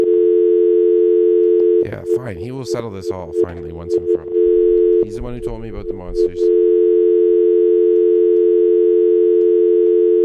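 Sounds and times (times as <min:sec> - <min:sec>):
telephone dial tone: 0:00.0 - 0:01.8, 0:04.4 - 0:05.8, 0:06.5 - 0:10.2
speech: 0:01.9 - 0:06.7.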